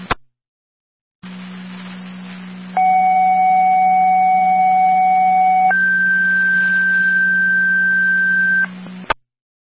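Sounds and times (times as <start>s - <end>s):
constant hum: 1.2s - 9.2s
fire dispatch paging tones over a radio channel: 2.8s - 8.7s.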